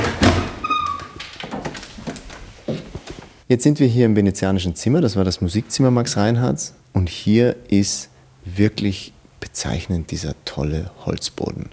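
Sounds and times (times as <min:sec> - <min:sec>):
wooden door thump: 0:00.0 - 0:01.8
creaking wooden door: 0:00.0 - 0:03.4
speech: 0:03.5 - 0:11.7.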